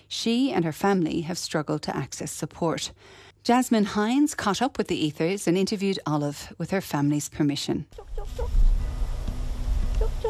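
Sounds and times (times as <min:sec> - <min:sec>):
speech: 0:00.1 - 0:08.8
chickens clucking on a farm: 0:08.0 - 0:08.7, 0:09.9 - 0:10.2
low rumbling background: 0:08.0 - 0:10.2.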